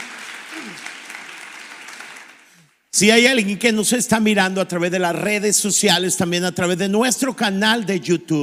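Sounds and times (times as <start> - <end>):
crowd applauding: 0.0 - 2.8
speech: 3.0 - 8.4.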